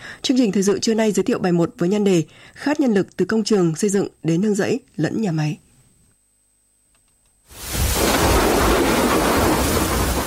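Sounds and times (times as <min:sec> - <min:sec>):
speech: 0:00.3 - 0:05.6
heavy rain: 0:07.5 - 0:10.2
rolling thunder during a rainstorm: 0:07.6 - 0:10.2.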